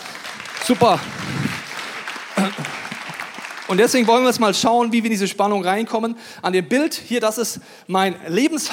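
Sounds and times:
audience applause of many hands clapping: 0.0 - 4.9
speech: 0.7 - 1.4, 2.4 - 2.8, 3.7 - 8.7.

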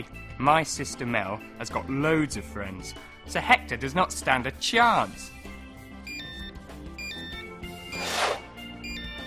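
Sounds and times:
speech: 0.0 - 5.4
mobile phone ringing with bright electronic melody: 6.0 - 9.2.

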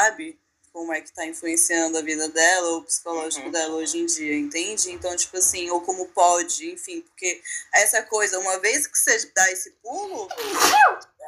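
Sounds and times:
speech: 0.1 - 11.1
person sneezing: 10.3 - 11.0.

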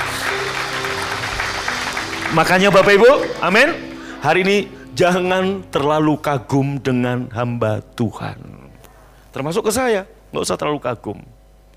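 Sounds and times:
large crowd applauding: 0.0 - 4.3
speech: 2.3 - 8.6, 9.3 - 11.4.

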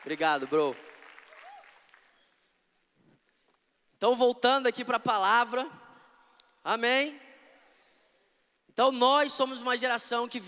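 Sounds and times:
speech: 0.0 - 0.9, 4.0 - 5.8, 6.6 - 7.2, 8.8 - 10.4
audience applause: 0.0 - 2.3.

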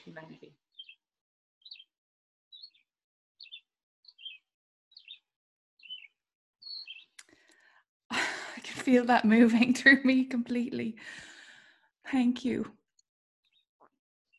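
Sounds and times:
speech: 0.0 - 0.7, 8.9 - 11.3, 12.1 - 12.8
bird chirping two-note calls: 0.0 - 1.0, 1.6 - 1.9, 2.5 - 7.2.

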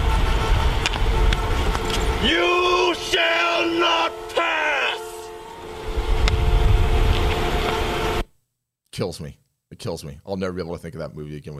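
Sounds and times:
line of car horns blaring on a road: 0.0 - 8.3
steady road noise: 0.0 - 8.3
speech: 2.2 - 2.6, 9.0 - 11.5
man shouting: 2.2 - 5.4.

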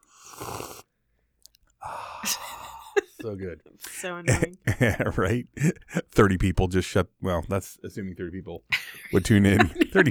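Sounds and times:
person sipping hot tea from a cup: 0.0 - 0.9
speech: 2.2 - 2.4, 3.2 - 10.0
laughter: 8.7 - 10.0.

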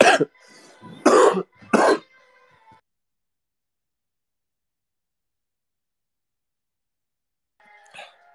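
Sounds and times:
person coughing: 0.0 - 0.3, 1.0 - 2.0.

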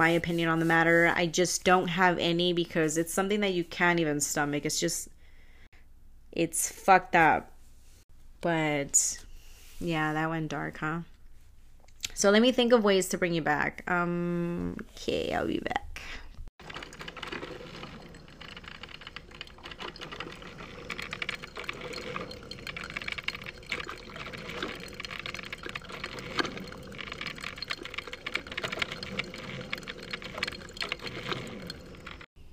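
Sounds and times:
speech: 0.0 - 5.1, 6.3 - 7.5, 8.4 - 9.2, 9.8 - 11.1, 12.2 - 16.2
coffee maker brewing coffee: 16.6 - 32.3
faint mechanical rattle of coffee maker: 16.6 - 32.3.

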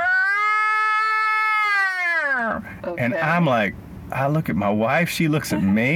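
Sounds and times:
human voice imitating the cry of a big cat: 0.0 - 2.6
speech: 2.9 - 5.9.

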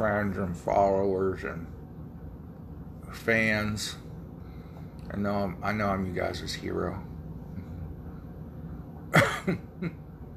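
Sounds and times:
speech: 0.0 - 1.8, 3.1 - 4.0, 5.1 - 7.1, 9.1 - 10.0
quiet room hum: 0.0 - 10.3
person coughing: 9.1 - 10.0.

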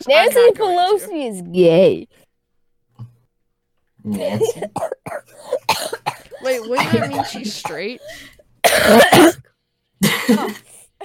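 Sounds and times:
speech: 0.0 - 2.2, 4.0 - 10.7
harsh coughing with a throaty rasp: 4.0 - 11.0.

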